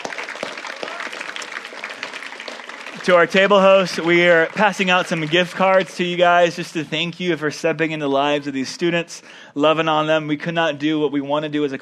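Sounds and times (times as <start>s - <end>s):
crowd at a college ministry gathering applauding: 0.0s - 6.7s
speech: 3.0s - 11.7s.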